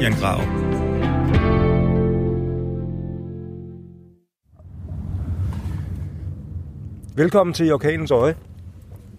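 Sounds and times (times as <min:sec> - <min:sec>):
speech: 0:00.0 - 0:00.8, 0:07.2 - 0:08.5
sustained musical chord ringing: 0:00.0 - 0:04.2
low rumble of a car interior on the move: 0:04.5 - 0:09.1.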